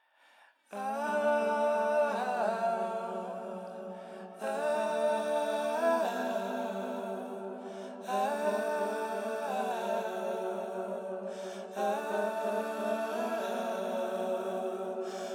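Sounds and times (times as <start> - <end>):
mixed song vocals: 0.7 - 15.3.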